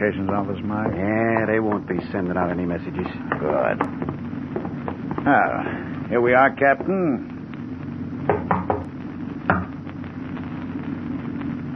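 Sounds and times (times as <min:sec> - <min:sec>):
speech: 0:00.0 - 0:04.2, 0:05.2 - 0:07.3
low steady hum: 0:00.0 - 0:11.7
sharp knocks on a locked door: 0:08.3 - 0:08.8.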